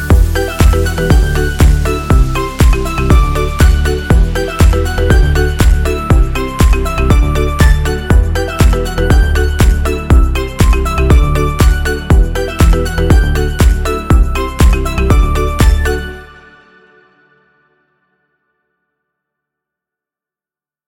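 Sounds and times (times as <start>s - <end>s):
full drum kit loop: 0.1s - 16.1s.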